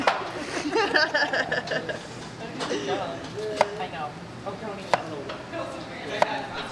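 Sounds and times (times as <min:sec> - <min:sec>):
laughter: 0:00.0 - 0:03.2
soft murmur of voices: 0:01.5 - 0:06.6
knife chopping vegetables on a cutting board: 0:03.5 - 0:03.8, 0:04.8 - 0:05.1.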